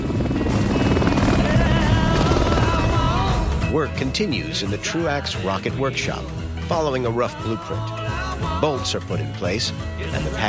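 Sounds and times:
helicopter rotor chop: 0:00.0 - 0:04.1
speech: 0:03.8 - 0:10.4.

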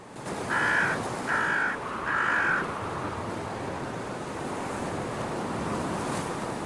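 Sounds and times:
steady roaring surf: 0:00.0 - 0:06.6
wind: 0:00.0 - 0:06.6
smaller birds giving harsh raspy calls while mobbing an eagle: 0:00.5 - 0:02.7.

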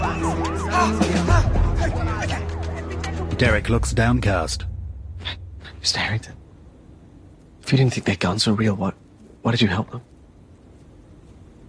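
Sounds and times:
police and ambulance sirens wailing at a barricaded emergency scene: 0:00.0 - 0:04.6
deep rumble: 0:00.0 - 0:07.6
speech: 0:00.8 - 0:01.0, 0:03.4 - 0:06.4, 0:07.7 - 0:10.1.

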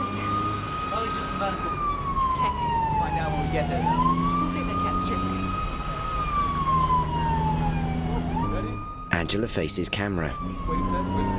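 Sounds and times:
fire truck siren wailing as it leaves the fire station: 0:00.6 - 0:09.0
speech: 0:01.4 - 0:05.7, 0:09.2 - 0:11.3.

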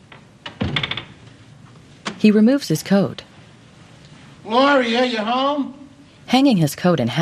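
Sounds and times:
wooden front door opening: 0:00.1 - 0:01.2
speech: 0:02.2 - 0:03.3, 0:04.5 - 0:07.2.

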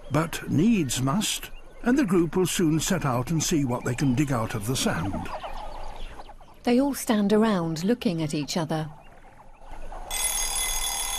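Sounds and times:
speech: 0:00.1 - 0:05.4, 0:06.6 - 0:09.0
alarm clock bell ringing: 0:10.1 - 0:11.1.

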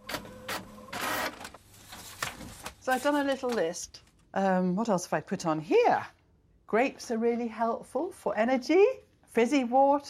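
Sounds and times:
printer feeding out a page: 0:00.0 - 0:02.7
speech: 0:02.9 - 0:10.0.

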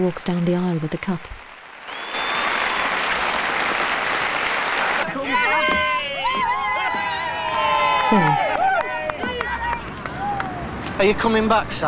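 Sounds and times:
speech: 0:00.0 - 0:01.4, 0:08.1 - 0:08.4, 0:11.0 - 0:11.8
crowd applause as people stand: 0:01.4 - 0:10.7
whistles: 0:01.8 - 0:03.4
excited voices: 0:01.9 - 0:10.7.

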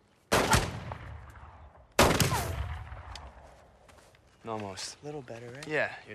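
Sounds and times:
pistol shots fired at a row of oranges on a log: 0:00.3 - 0:03.2
speech: 0:04.4 - 0:06.1.

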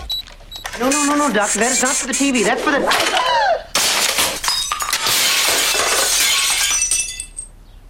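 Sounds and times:
speech: 0:00.8 - 0:03.4
glass swan shattering into picture: 0:03.8 - 0:07.5
shattering shards and tinkling glass fragments: 0:04.4 - 0:07.5.

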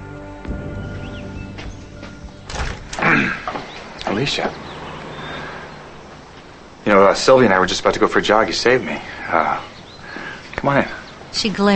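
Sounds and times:
speech: 0:00.5 - 0:01.0, 0:04.2 - 0:04.7, 0:06.9 - 0:09.7, 0:10.6 - 0:11.7
front door rattling as it swings open: 0:01.6 - 0:04.6
front door latch and handle clicks and knocks: 0:02.5 - 0:03.1.

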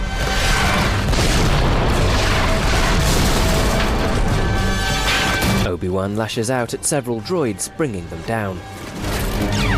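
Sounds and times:
heavy cannon fire booming in battle: 0:00.2 - 0:05.7
speech: 0:06.0 - 0:09.6.

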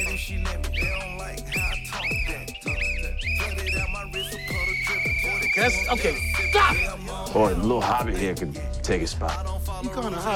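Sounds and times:
shrill whistle blasts: 0:00.0 - 0:07.0
speech: 0:05.6 - 0:10.3.

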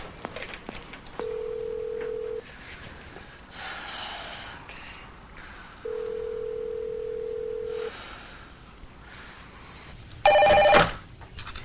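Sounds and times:
telephone dialing beeps in a motel room: 0:01.2 - 0:02.4, 0:05.9 - 0:07.7, 0:10.3 - 0:10.9
telephone long steady ringing tones: 0:01.2 - 0:02.4, 0:05.9 - 0:07.9, 0:10.3 - 0:11.0
breathing: 0:02.4 - 0:06.2, 0:07.6 - 0:10.0.

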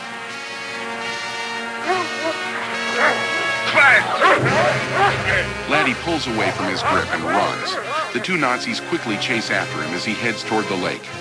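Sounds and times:
steady musical background: 0:00.0 - 0:11.1
dog barking: 0:01.8 - 0:05.4
laughter: 0:01.8 - 0:11.0
speech: 0:04.4 - 0:11.1.

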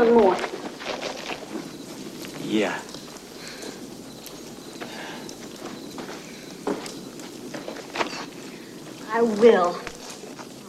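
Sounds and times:
heavy footsteps stomping on rocky ground: 0:00.0 - 0:10.6
low steady hum: 0:00.0 - 0:10.6
speech: 0:02.5 - 0:02.9, 0:09.2 - 0:09.9.

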